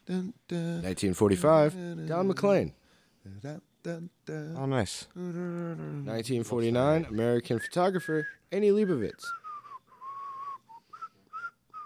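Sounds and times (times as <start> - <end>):
speech: 0.1 - 9.4
person whistling a short melodic tune: 7.5 - 11.8.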